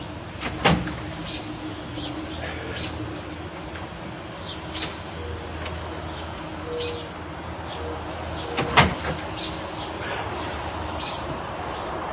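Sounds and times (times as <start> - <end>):
front door opening with a sharp click and rattle: 0.0 - 12.1
faint high bird chirps outdoors: 1.0 - 12.1.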